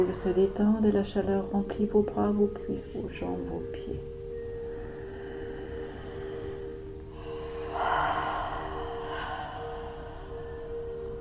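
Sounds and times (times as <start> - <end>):
speech: 0.0 - 4.2
steady low hum: 0.0 - 11.1
deep relaxing exhalation during a guided relaxation exercise: 5.0 - 10.8.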